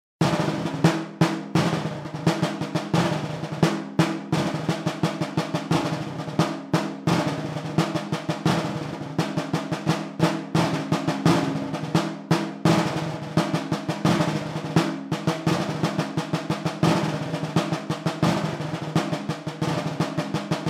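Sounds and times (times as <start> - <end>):
snare drum: 0.2 - 20.6.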